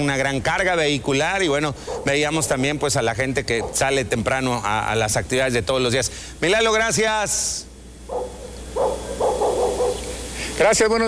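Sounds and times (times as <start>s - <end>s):
speech: 0.0s - 8.4s, 10.6s - 11.0s
steady hiss: 0.0s - 11.0s
dog barking: 1.8s - 2.3s, 3.5s - 4.0s, 8.1s - 10.2s.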